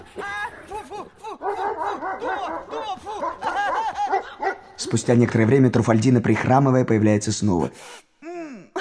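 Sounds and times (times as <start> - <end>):
laughter: 0.0 - 4.8
agitated dog snarling, barking and yelping: 1.4 - 4.7
speech: 4.8 - 8.1.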